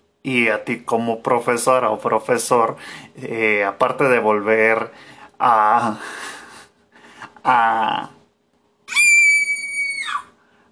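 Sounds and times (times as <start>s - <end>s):
speech: 0.2s - 6.4s, 7.4s - 8.2s
person screaming: 8.9s - 10.3s.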